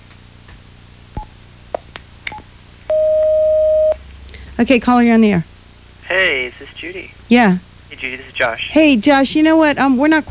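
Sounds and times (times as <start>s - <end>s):
telephone keypad tones: 2.3s - 4.0s
sustained telephone line tone connecting an incoming caller: 2.9s - 4.0s
speech: 4.6s - 5.5s, 6.1s - 10.2s.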